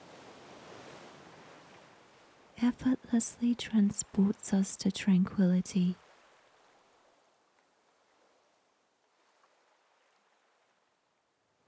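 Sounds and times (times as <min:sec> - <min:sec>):
ocean waves washing onto shore: 0:00.0 - 0:07.1
speech: 0:02.6 - 0:06.0.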